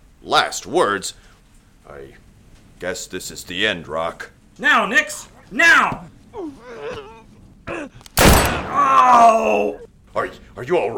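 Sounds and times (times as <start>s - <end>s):
speech: 0.3s - 1.3s, 1.9s - 2.2s, 2.8s - 7.0s, 8.9s - 10.9s
gunshot: 8.2s - 9.0s.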